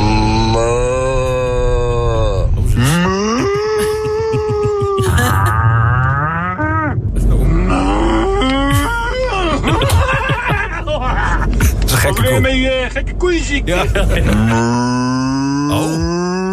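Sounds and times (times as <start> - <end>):
human voices imitating cow moos, recordings sent in through an app: 0.0 - 9.0, 14.3 - 16.5
laughter: 3.2 - 6.1, 8.5 - 11.9, 13.7 - 14.6
speech: 12.9 - 16.3.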